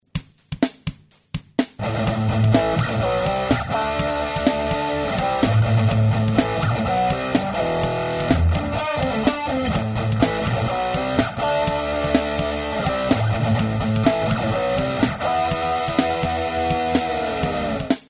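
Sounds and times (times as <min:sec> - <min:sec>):
distorted electric guitar riff through AC30 amp simulation with boost: 0:01.8 - 0:18.0.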